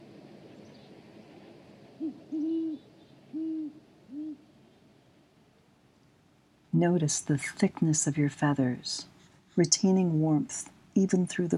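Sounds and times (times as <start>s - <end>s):
night ambience hiss: 0.0s - 11.5s
speech: 2.0s - 2.9s, 6.8s - 11.5s
owl hooting: 2.0s - 4.5s.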